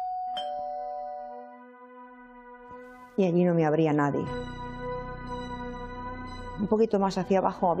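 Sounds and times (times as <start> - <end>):
doorbell chiming ding-dong: 0.0 - 1.6
speech: 3.2 - 4.6, 6.6 - 7.7.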